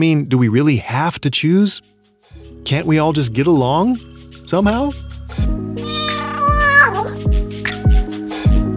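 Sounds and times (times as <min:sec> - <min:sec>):
speech: 0:00.0 - 0:02.0, 0:02.6 - 0:05.6
kitten meowing: 0:05.8 - 0:07.2.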